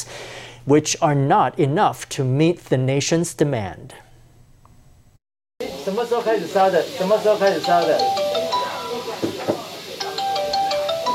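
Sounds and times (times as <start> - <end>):
speech: 0.7 - 4.0, 5.8 - 8.2
busy hissing background: 5.6 - 11.1
phones ringing at a clinic taking calls from COVID patients: 7.3 - 9.2, 10.0 - 11.1.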